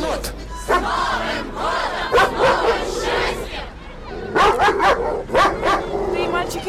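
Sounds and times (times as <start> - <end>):
children shouting and chattering at a festive outdoor playground on a New Year's night: 0.4 - 6.6
dog barking at an outdoor playground: 4.4 - 6.2.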